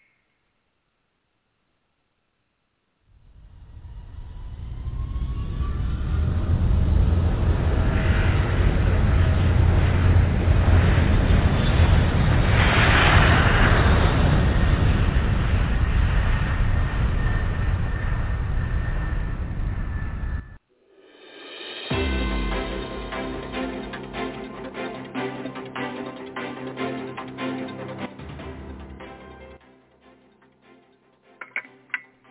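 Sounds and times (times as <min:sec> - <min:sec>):
airplane engine roaring on takeoff: 0:03.1 - 0:20.6, 0:21.9 - 0:29.6.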